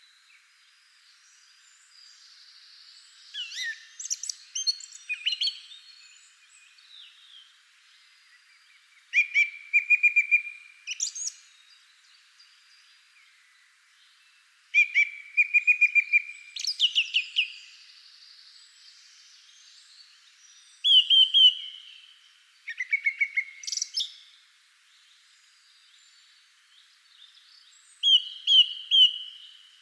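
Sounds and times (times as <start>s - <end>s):
bird high piping calls with sharp chips and brief trills: 3.3s - 7.3s, 8.4s - 11.6s, 14.7s - 17.9s, 19.4s - 24.3s, 27.2s - 29.6s.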